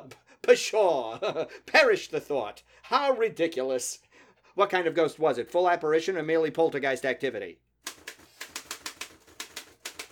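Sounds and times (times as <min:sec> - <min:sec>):
speech: 0:00.5 - 0:04.0, 0:04.6 - 0:07.6
typewriter keys clacking: 0:07.9 - 0:10.1.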